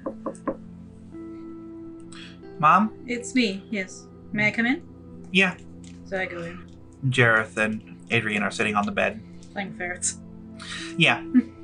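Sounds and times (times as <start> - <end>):
quick knocks on a door: 0.0 - 0.6
speech: 2.6 - 11.6.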